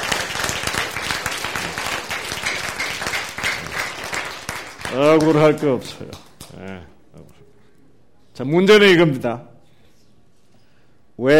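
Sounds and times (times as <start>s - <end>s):
audience applause: 0.0s - 6.5s
speech: 4.9s - 6.2s, 8.4s - 9.5s, 11.2s - 11.3s.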